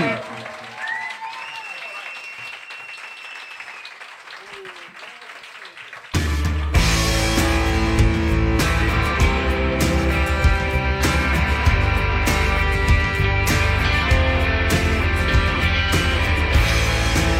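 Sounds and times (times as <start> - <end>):
large audience applauding and cheering loudly for a rap artist: 0.0 - 17.3
scattered whistles from audience: 0.7 - 4.6
music: 6.1 - 17.3.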